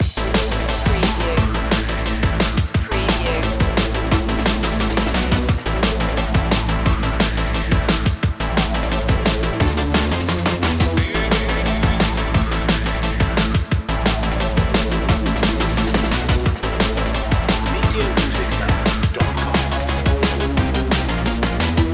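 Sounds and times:
massive music loop: 0.0 - 21.9.

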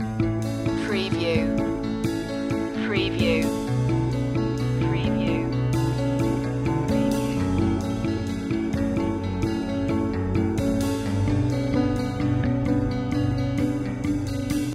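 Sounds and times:
music loop: 0.0 - 14.7.

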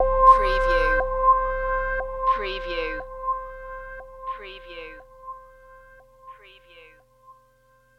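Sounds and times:
high evil tone: 0.0 - 5.6.

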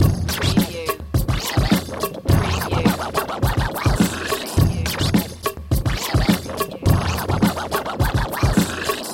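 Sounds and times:
scratching groove: 0.0 - 9.1.

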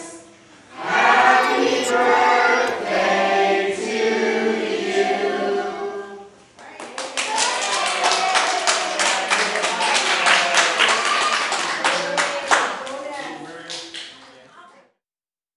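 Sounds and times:
celebratory song: 0.8 - 6.0
clapping: 6.6 - 14.4.

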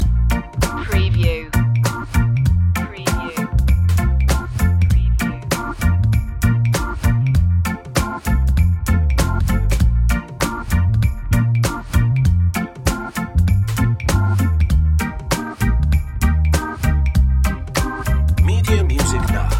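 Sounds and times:
roots reggae party music loop: 0.0 - 19.5.

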